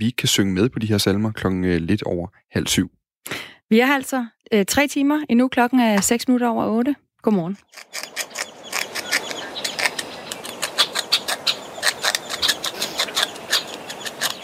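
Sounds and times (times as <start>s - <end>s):
speech: 0.0s - 8.3s
beaver gnawing on wood: 7.6s - 14.4s.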